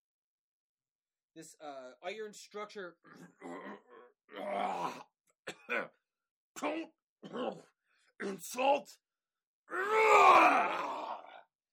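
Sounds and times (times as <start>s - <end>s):
speech: 1.4s - 5.1s, 5.7s - 6.0s, 6.6s - 9.0s, 9.7s - 11.0s
deep voiced bellowing roar of rage: 4.4s - 5.0s, 9.7s - 11.4s.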